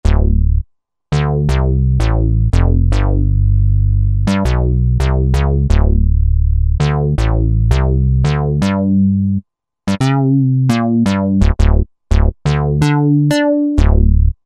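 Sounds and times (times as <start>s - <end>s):
Roland SR-JV80-12 synth bass from a hip hop collection: 0.0s - 14.4s.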